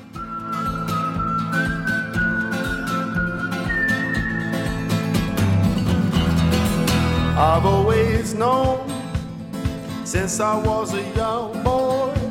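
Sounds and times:
whistled melody in a pop song: 0:00.0 - 0:06.4
busy band backing a pop song: 0:01.3 - 0:10.8
speech: 0:10.2 - 0:12.2.

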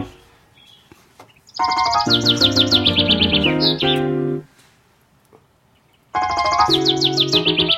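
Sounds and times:
sustained piano chords: 0:00.0 - 0:00.4, 0:01.6 - 0:04.5, 0:06.2 - 0:07.7
nightingale singing in rapid bright trills: 0:00.0 - 0:04.5, 0:05.7 - 0:07.7.

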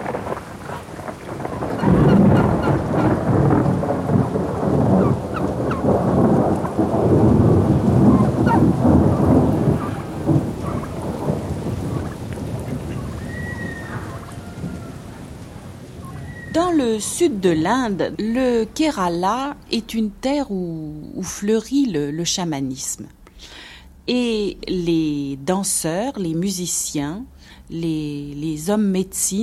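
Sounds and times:
heavy monsoon rainstorm downpour: 0:00.0 - 0:21.6
deep rumbling thunder: 0:00.0 - 0:22.0
faint bird call: 0:12.9 - 0:15.2, 0:16.0 - 0:16.6
speech: 0:17.0 - 0:29.4.

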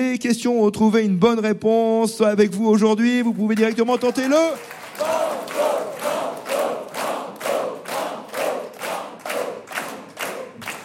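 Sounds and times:
speech: 0:00.0 - 0:05.7
radio quiz studio audience chanting in unison: 0:04.9 - 0:10.0.

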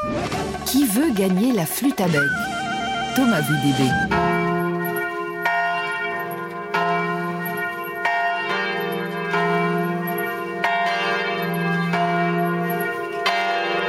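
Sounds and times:
church bells ringing: 0:00.2 - 0:13.8
speech: 0:00.7 - 0:04.3.

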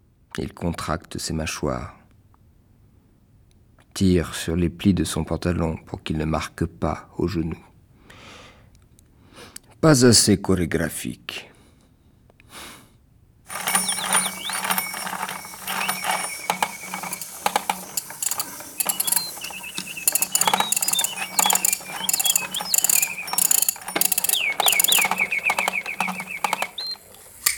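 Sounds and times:
speech: 0:00.4 - 0:02.0, 0:04.0 - 0:07.7, 0:09.8 - 0:11.5
wind-up mechanical animal toys high bird-like chirping whistles: 0:13.5 - 0:27.5
wind-up mechanical animal toys ratcheting clicks: 0:13.5 - 0:27.5.

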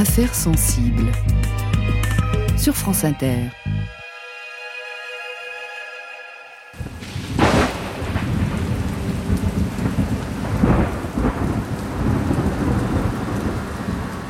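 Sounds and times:
speech: 0:00.0 - 0:01.4, 0:02.6 - 0:03.6
heavy rain pouring in a thunderstorm: 0:06.8 - 0:14.2
rumbling thunder: 0:06.8 - 0:14.2.

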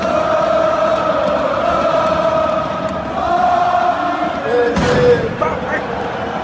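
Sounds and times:
football ultras chanting in unison in stadium stands: 0:00.0 - 0:06.4.

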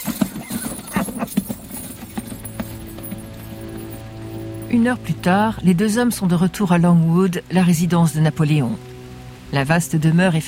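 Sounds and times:
horses galloping through a valley toward a ditch: 0:00.0 - 0:05.5
speech: 0:04.7 - 0:08.9, 0:09.5 - 0:10.4.

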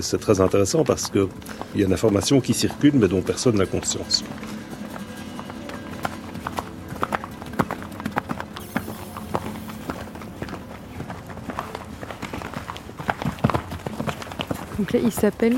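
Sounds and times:
speech: 0:00.0 - 0:04.7, 0:14.9 - 0:15.5
stallion's hooves clip-clopping on a hard surface: 0:00.0 - 0:15.5.

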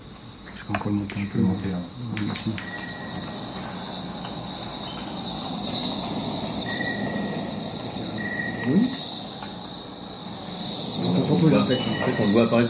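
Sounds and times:
constant insect buzzing hum in nighttime rainforest: 0:00.0 - 0:12.6
high-pitched cricket trills in French Guiana rainforest at night: 0:00.0 - 0:12.6
speech: 0:00.7 - 0:02.8, 0:11.4 - 0:12.6
brief whistle-like tones in nighttime rainforest: 0:06.6 - 0:09.1, 0:10.9 - 0:12.6.

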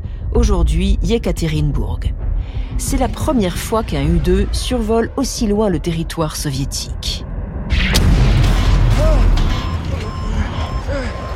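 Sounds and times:
deep sustained rumble: 0:00.0 - 0:11.3
speech: 0:00.4 - 0:02.2, 0:02.8 - 0:07.3
dull heavy thud of a mid-air explosion: 0:07.7 - 0:10.2.

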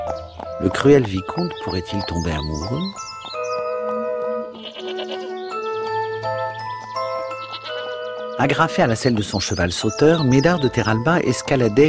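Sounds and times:
jingling bell tones: 0:00.0 - 0:11.8
speech: 0:00.1 - 0:03.0, 0:08.4 - 0:11.8
sustained ringing notes: 0:03.0 - 0:08.5
goats bleating in a meadow: 0:04.5 - 0:05.5, 0:07.3 - 0:08.4.

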